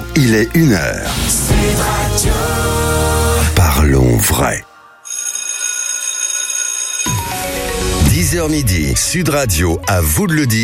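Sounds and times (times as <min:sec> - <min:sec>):
speech: 0:00.2 - 0:04.7, 0:08.3 - 0:10.6
school bell ringing: 0:05.0 - 0:07.5.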